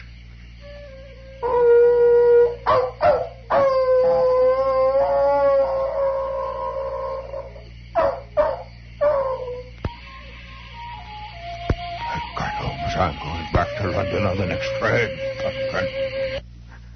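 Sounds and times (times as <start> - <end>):
hounds howling and baying: 0.6 - 16.4.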